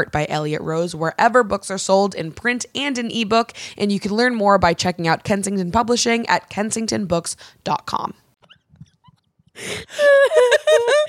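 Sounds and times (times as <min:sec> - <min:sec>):
speech: 0:00.0 - 0:08.2, 0:09.6 - 0:11.0
sharp gasping breath: 0:09.6 - 0:10.2
laughter: 0:10.0 - 0:11.0.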